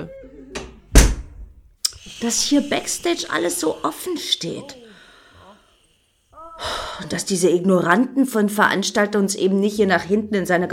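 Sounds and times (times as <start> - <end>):
dressing-room door creak: 0.0 - 1.4
backstage dressing-room door shutting with a heavy thud: 0.6 - 1.6
speech: 2.2 - 4.8, 6.6 - 10.7.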